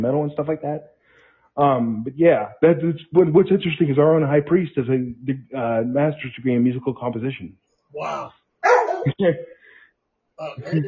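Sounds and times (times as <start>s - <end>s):
speech: 0.0s - 1.0s, 1.6s - 8.4s, 9.1s - 9.5s, 10.4s - 10.8s
dog barking and whining: 8.1s - 9.1s.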